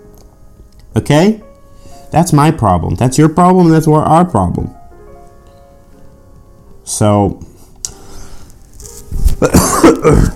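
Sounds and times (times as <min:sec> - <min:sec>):
speech: 0:01.0 - 0:01.5, 0:02.1 - 0:04.8, 0:06.9 - 0:07.5, 0:09.4 - 0:10.3
person coughing: 0:09.4 - 0:10.3.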